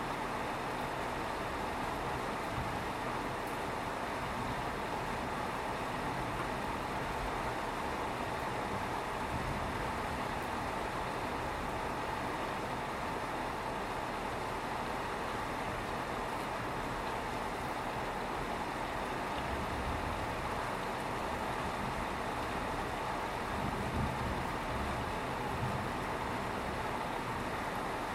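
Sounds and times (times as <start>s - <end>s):
steady dense rain: 0.0s - 28.1s.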